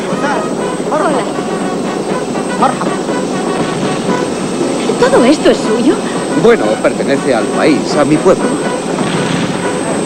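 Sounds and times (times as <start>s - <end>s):
helicopter engine drone: 0.0s - 10.0s
speech: 2.6s - 2.9s, 5.2s - 8.8s.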